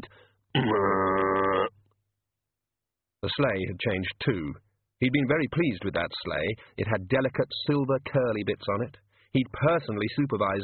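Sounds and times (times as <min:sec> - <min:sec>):
speech: 0:00.5 - 0:01.1, 0:03.2 - 0:10.6
person voicing a guttural pig-like grunt: 0:00.6 - 0:01.7.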